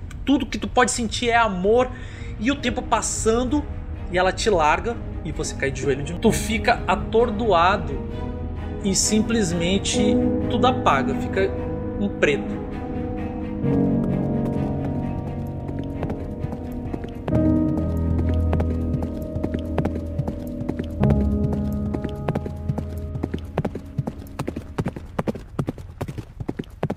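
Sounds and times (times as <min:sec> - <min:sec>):
speech: 0:00.3 - 0:12.7, 0:13.6 - 0:13.9
sustained musical chords: 0:02.3 - 0:25.3
horse hooves galloping: 0:13.7 - 0:26.9.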